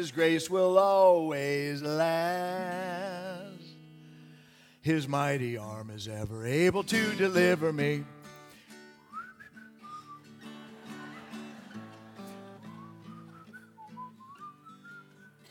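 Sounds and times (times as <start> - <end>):
speech: 0.0 - 3.5, 4.8 - 8.2
person whistling a flowing melody: 9.0 - 10.6, 12.5 - 15.4
laughter: 10.4 - 12.9.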